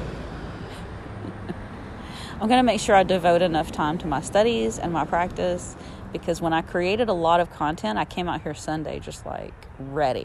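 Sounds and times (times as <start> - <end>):
truck driving past with deep low rumble: 0.0 - 6.3
speech: 2.4 - 10.2.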